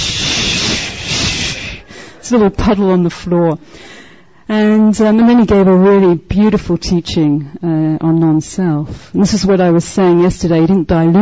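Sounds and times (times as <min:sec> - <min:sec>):
vocal hiss imitating a deflating balloon: 0:00.0 - 0:02.0
speech: 0:02.3 - 0:03.9, 0:04.5 - 0:11.2.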